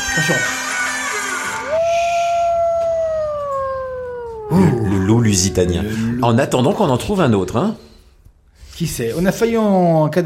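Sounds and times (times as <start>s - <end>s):
speech: 0.2s - 0.6s, 4.5s - 7.9s, 8.8s - 10.2s
microphone feedback howl caused by headphones passed in front of the microphone: 1.6s - 7.2s.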